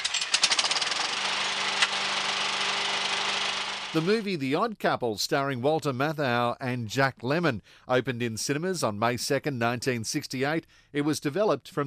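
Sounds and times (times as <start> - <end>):
small petrol lawnmower engine sputtering and droning: 0.0 - 4.2
speech: 3.9 - 11.8.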